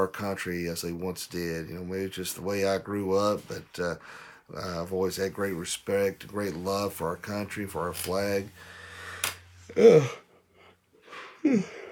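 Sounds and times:
speech: 0.0s - 10.2s, 11.4s - 11.8s
short strained vocal breath: 8.6s - 11.9s
person yawning: 9.7s - 10.3s, 11.3s - 11.9s.

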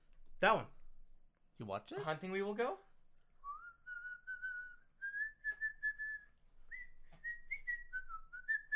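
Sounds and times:
speech: 0.4s - 0.8s, 1.6s - 2.9s
person whistling a simple bouncy melody: 3.4s - 8.7s.

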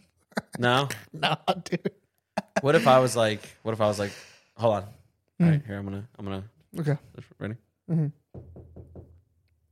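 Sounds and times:
speech: 0.6s - 8.6s
knocking on a door: 8.3s - 9.3s.

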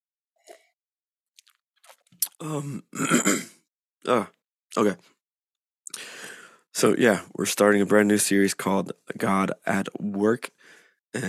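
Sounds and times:
faint clicks and small mouth sounds: 2.2s - 2.6s
person who is under the weather clearing throat: 2.3s - 4.3s
speech: 2.4s - 5.1s, 6.8s - 11.2s.

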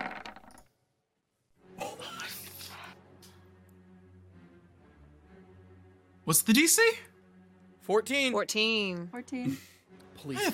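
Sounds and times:
dice clattering across a hard tabletop: 0.0s - 0.6s
speech: 6.3s - 7.1s, 7.9s - 10.5s.

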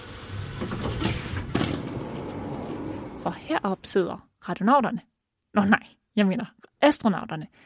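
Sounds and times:
rocket nose door sliding open: 0.3s - 3.6s
speech: 0.6s - 1.0s, 3.5s - 7.6s.

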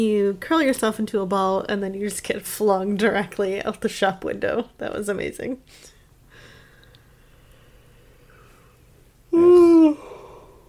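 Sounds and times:
speech: 0.0s - 5.9s
person yawning: 9.3s - 10.6s.

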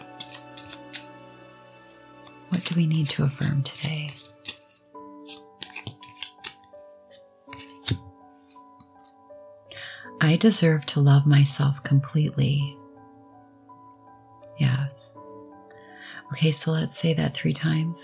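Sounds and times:
deck of cards being shuffled: 0.0s - 1.2s, 2.2s - 9.2s
speech: 2.5s - 4.2s, 10.3s - 12.8s, 16.4s - 18.0s.

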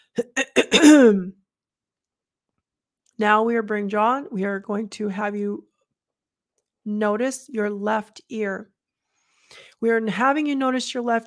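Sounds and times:
person clearing throat: 0.2s - 1.4s
speech: 0.2s - 1.4s, 3.2s - 5.7s, 6.8s - 8.7s, 9.5s - 11.2s.

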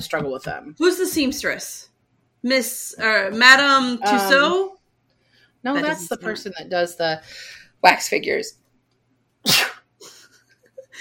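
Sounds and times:
speech: 0.0s - 4.8s, 5.6s - 8.6s, 9.4s - 9.7s
person sneezing: 9.4s - 9.9s.

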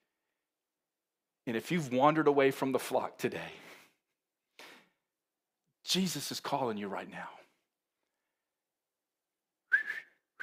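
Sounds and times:
speech: 1.5s - 3.7s, 5.9s - 7.4s
person with dry lips attempting a whistle: 9.7s - 10.4s.

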